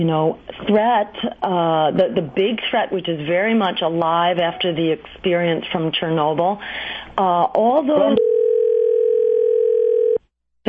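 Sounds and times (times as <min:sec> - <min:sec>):
speech: 0:00.0 - 0:08.3
voice speaking over the telephone line: 0:07.9 - 0:08.3
steady telephone line tone humming at a constant pitch: 0:08.0 - 0:10.3.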